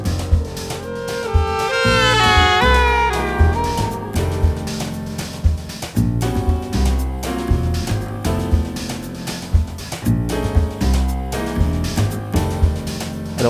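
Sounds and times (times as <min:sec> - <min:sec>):
band playing busy rhythmic piece: 0:00.1 - 0:13.4
saxophones imitating a Doppler car horn passing by: 0:00.4 - 0:04.6.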